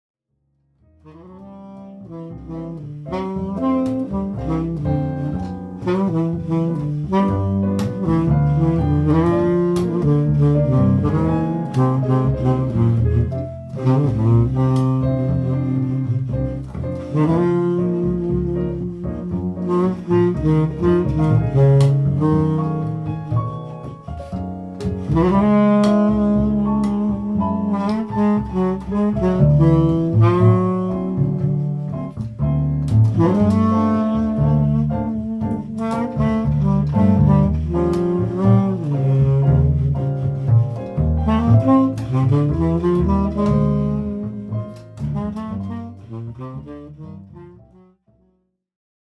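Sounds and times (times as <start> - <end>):
bass: 0.2 - 48.7
piano: 0.3 - 48.6
saxophone: 1.0 - 48.2.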